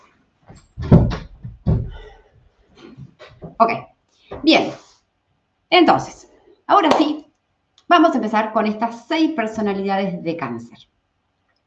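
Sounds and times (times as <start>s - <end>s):
soft rattling and shuffling: 0.0s - 5.0s
door being pulled shut: 0.8s - 2.0s
speech: 3.6s - 3.9s, 4.5s - 4.8s, 5.8s - 7.1s, 8.0s - 10.9s.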